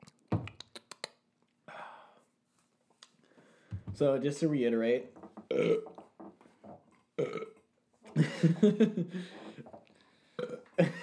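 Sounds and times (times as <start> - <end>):
speech: 4.0 - 5.9, 8.4 - 9.4
loud rough gurgling burps: 5.5 - 6.0, 7.2 - 8.3, 10.4 - 11.0.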